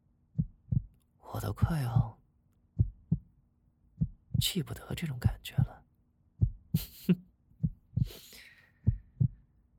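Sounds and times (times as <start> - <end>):
heartbeat felt by a hand pressed on a person's chest: 0.3 - 3.3, 3.9 - 5.8, 6.4 - 8.2, 8.8 - 9.4
speech: 1.4 - 2.2, 4.4 - 5.8, 6.8 - 7.2.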